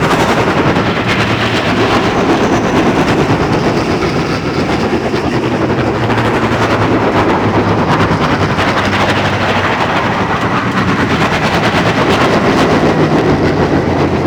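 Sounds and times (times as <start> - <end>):
dropship engine loop: 0.0 - 14.2.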